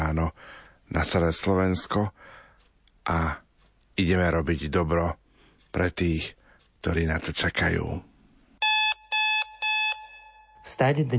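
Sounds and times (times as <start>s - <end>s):
speech: 0.9s - 2.4s, 3.1s - 3.4s, 4.0s - 8.1s, 10.7s - 11.1s
electronic alarm clock ringing with buzzy tones: 8.6s - 10.7s.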